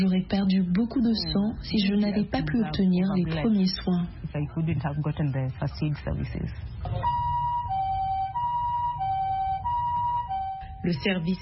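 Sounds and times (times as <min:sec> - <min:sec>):
speech: 0:00.0 - 0:07.2, 0:10.8 - 0:11.3
low road rumble: 0:00.0 - 0:11.3
ambulance siren with two-tone hi-lo wail: 0:06.9 - 0:11.3.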